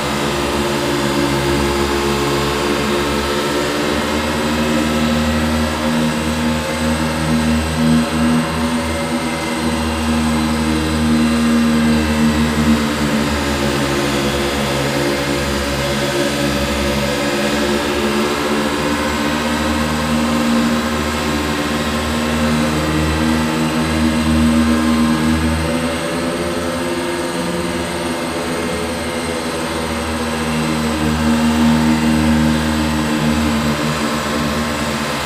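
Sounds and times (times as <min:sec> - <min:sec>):
giant sci-fi fan turbine: 0:00.0 - 0:35.2.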